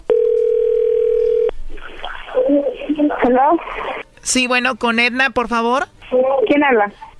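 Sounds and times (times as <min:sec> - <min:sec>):
telephone dial tone while a phone call is being placed: 0:00.1 - 0:01.5
speech: 0:03.3 - 0:07.1.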